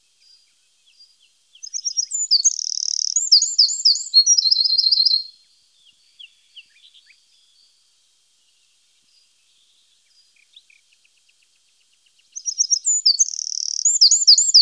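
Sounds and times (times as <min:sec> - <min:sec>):
Eurasian wren song trills: 0:00.0 - 0:07.8, 0:08.4 - 0:14.5.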